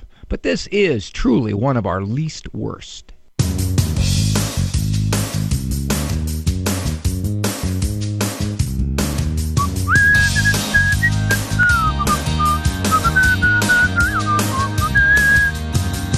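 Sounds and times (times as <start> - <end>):
speech: 0.3 - 3.2
instrumental backing with a strong beat: 3.4 - 16.1
person whistling a bright melody: 9.6 - 15.6.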